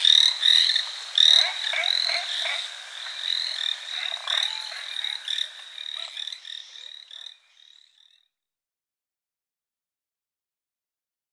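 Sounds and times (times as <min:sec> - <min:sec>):
Chinese tree frog Hyla chinensis calling: 0:00.0 - 0:08.3.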